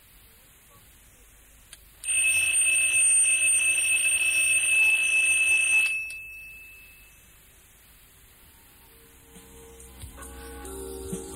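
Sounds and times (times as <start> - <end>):
alarm clock ringing: 2.0 - 7.3.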